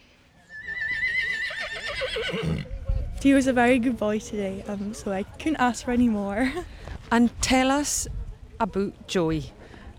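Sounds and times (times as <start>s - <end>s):
19-year-old Welsh Section D horse whinnying at an equestrian show: 0.5s - 2.7s
speech: 2.1s - 9.6s.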